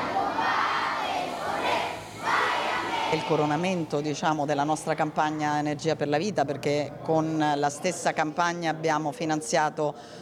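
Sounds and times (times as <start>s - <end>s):
large group of children singing the national anthem in unison: 0.0s - 3.6s
speech: 3.1s - 10.2s.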